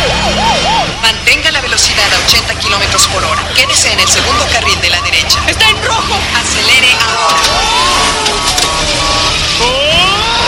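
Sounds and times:
police car engines roaring: 0.0 - 10.4
road noise: 0.0 - 10.4
speech: 2.7 - 7.8
police car crashing into another police car: 6.4 - 10.4
shrill rising tire squeals: 7.2 - 10.4.

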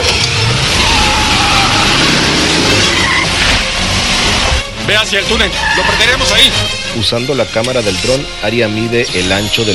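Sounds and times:
van engine roaring as it speeds off at full speed: 0.1 - 4.7
speech: 5.1 - 9.7.

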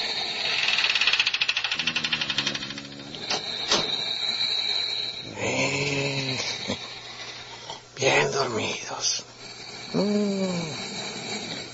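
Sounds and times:
quiet hiss: 0.0 - 11.7
door creaking on its hinges: 1.6 - 4.2
speech: 8.4 - 9.3, 9.9 - 10.8.

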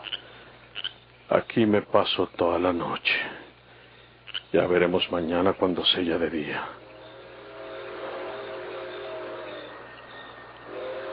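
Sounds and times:
speech: 1.4 - 3.4, 4.5 - 6.8
train approaching with low rumble: 5.0 - 11.1
faint horn-like tones: 6.7 - 11.1.

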